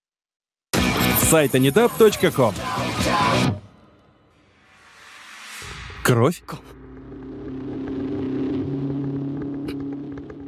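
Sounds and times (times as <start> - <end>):
speech: 1.3 - 3.6, 6.0 - 6.8
car engine droning as the car drives away: 3.7 - 10.4.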